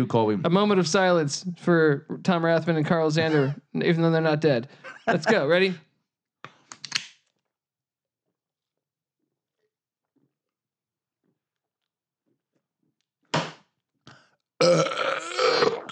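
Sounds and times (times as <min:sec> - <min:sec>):
speech: 0:00.0 - 0:05.9
loud long burp after shotgunning a beer: 0:14.6 - 0:15.9.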